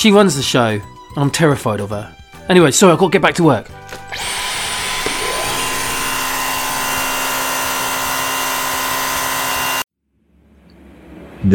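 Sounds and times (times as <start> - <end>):
speech: 0.0 - 4.4
vacuum cleaner running: 4.0 - 9.9.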